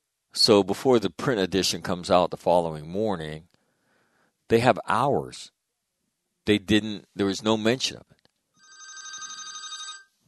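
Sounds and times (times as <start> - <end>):
faint noise: 0.0 - 10.2
speech: 0.4 - 3.5, 4.5 - 5.6, 6.4 - 8.2
telephone ringing with electronic trill: 8.6 - 10.2.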